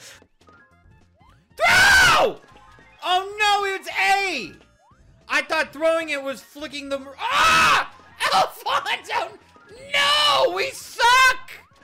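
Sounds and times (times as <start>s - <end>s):
man screaming while playing a video game: 1.6s - 2.4s, 7.2s - 9.2s, 9.8s - 11.4s
speech: 2.2s - 2.4s, 3.1s - 4.6s, 5.4s - 9.4s, 10.0s - 11.4s.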